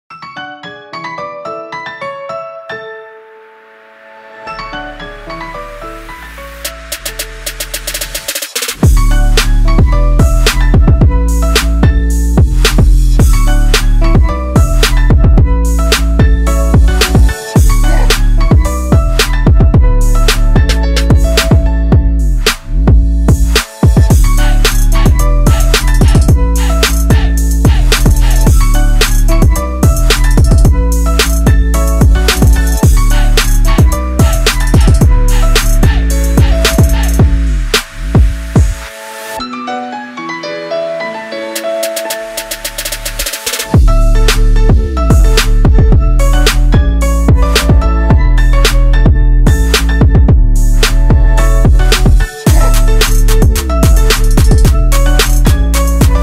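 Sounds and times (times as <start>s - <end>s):
bass remix ringtone: 8.8s - 38.4s, 43.8s - 56.2s.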